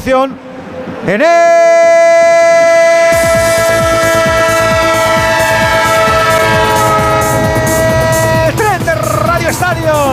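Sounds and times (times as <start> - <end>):
speech: 0.0 - 1.8
train sound effect horn-like tone: 1.8 - 9.2.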